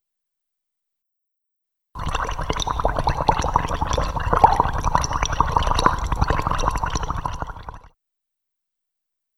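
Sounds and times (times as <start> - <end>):
liquid boiling with popping and gurgling: 2.0 - 7.9.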